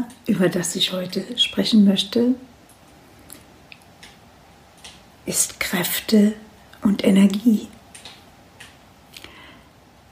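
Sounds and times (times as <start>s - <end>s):
low steady fire hiss: 0.0s - 10.1s
speech: 0.2s - 2.5s, 5.3s - 7.8s
wood fire crackling in a fireplace: 2.5s - 10.1s.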